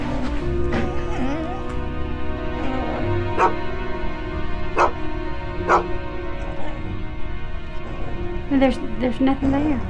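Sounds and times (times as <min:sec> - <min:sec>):
low droning background: 0:00.0 - 0:09.8
dog barking: 0:03.4 - 0:03.6, 0:04.8 - 0:05.0, 0:05.7 - 0:06.8
speech: 0:08.6 - 0:09.8.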